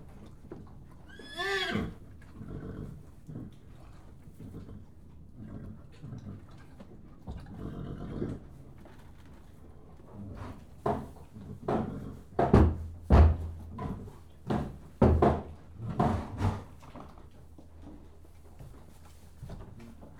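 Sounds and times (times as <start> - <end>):
horse whinny in a stable: 1.0 - 2.0
horse kicking a stable door: 12.5 - 16.6.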